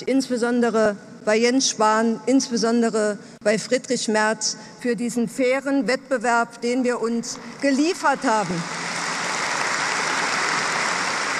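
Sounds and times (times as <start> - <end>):
speech: 0.0 - 8.9
audience applause at a gathering in Hamburg after a candidate accepts an election: 8.6 - 11.3.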